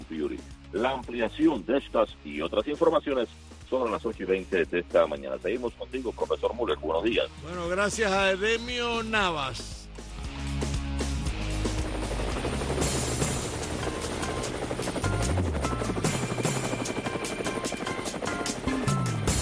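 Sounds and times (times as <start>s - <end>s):
speech: 0.1s - 9.8s
helicopter rotor blades chopping: 11.0s - 19.4s
helicopter engine whine: 11.3s - 19.4s.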